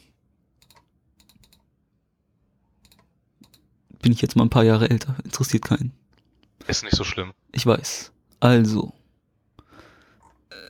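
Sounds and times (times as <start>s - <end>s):
keyboard typing as someone enters a birth date: 0.6s - 1.7s, 2.8s - 3.7s
speech: 4.0s - 6.0s, 6.7s - 9.0s.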